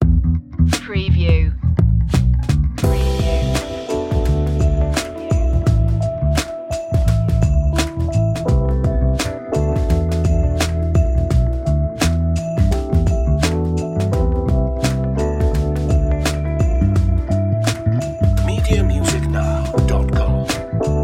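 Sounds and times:
sweet chillout music: 0.0s - 21.0s.

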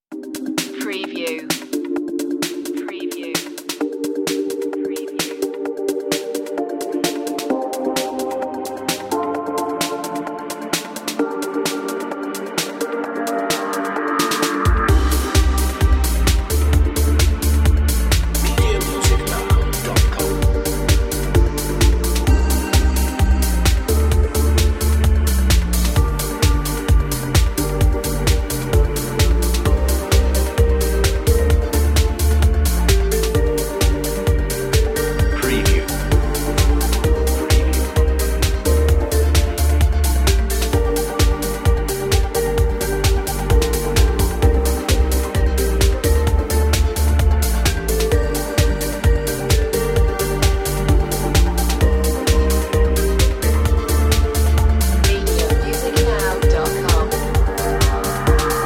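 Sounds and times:
emotional dance music: 0.1s - 58.6s.

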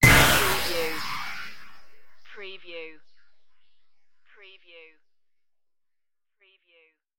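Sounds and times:
futuristic weapon strike: 0.0s - 2.4s.

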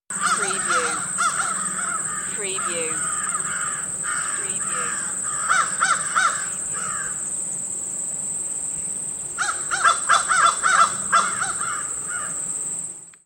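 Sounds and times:
crows: 0.1s - 7.2s, 9.4s - 12.4s.

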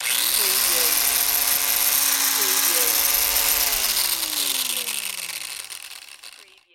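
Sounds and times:
rotary saw running: 0.0s - 6.7s.

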